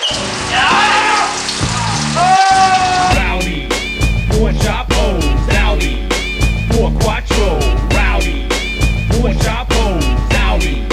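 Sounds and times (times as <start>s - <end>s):
shower water pouring: 0.0s - 6.6s
music playing: 0.0s - 10.9s.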